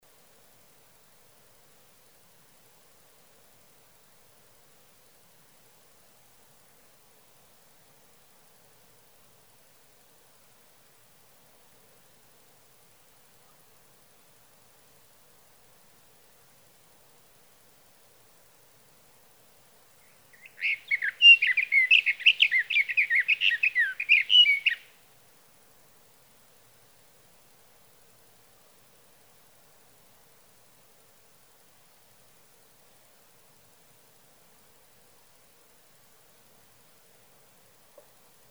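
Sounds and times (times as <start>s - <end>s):
Sage Thrasher singing through the night: 20.4s - 24.8s.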